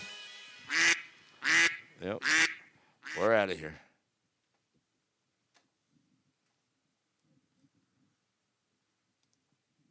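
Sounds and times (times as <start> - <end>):
duck quacking: 0.7 - 3.4
speech: 2.0 - 2.5, 3.5 - 3.9.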